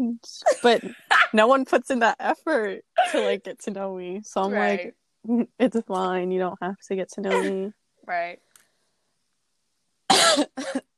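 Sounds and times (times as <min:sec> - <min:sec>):
speech: 0:00.0 - 0:08.5, 0:10.4 - 0:10.9
harsh coughs: 0:03.0 - 0:03.3, 0:10.1 - 0:10.9.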